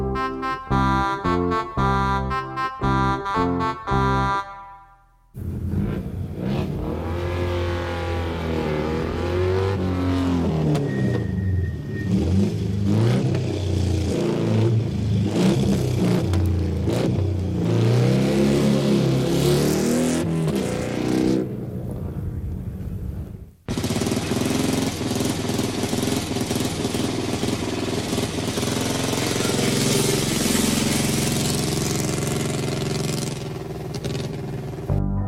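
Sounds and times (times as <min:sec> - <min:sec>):
bright electronic tones: 0:00.0 - 0:05.1
motorcycle engine revving: 0:05.4 - 0:22.2, 0:23.7 - 0:35.0.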